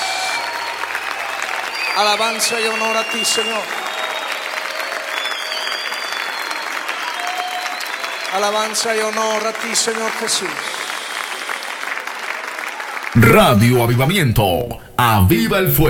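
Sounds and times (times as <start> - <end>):
audience applauding: 0.0 - 14.2
speech: 2.0 - 3.9, 8.3 - 10.9, 13.2 - 15.8.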